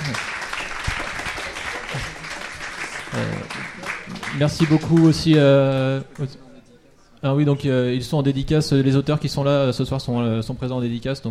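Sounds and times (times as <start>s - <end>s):
brief voices and cheers: 0.0s - 5.3s
room full of people applauding: 0.0s - 6.4s
speech: 3.2s - 3.6s, 4.4s - 6.4s, 7.2s - 11.3s.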